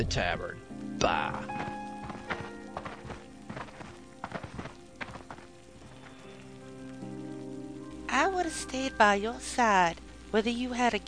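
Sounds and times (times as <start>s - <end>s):
speech: 0.0s - 1.7s, 8.1s - 11.0s
riding mount hooves trotting in a video game: 1.2s - 6.3s.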